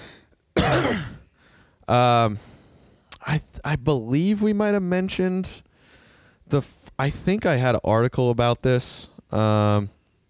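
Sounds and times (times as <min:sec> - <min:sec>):
person coughing into a microphone: 0:00.6 - 0:01.3
speech: 0:01.9 - 0:02.5, 0:03.3 - 0:05.7, 0:06.5 - 0:10.0.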